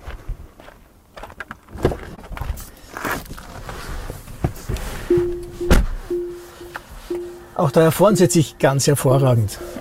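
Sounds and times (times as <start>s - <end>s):
seatbelt warning chime in an all-wheel-drive electric car: 5.1s - 9.7s
speech: 7.6s - 9.7s.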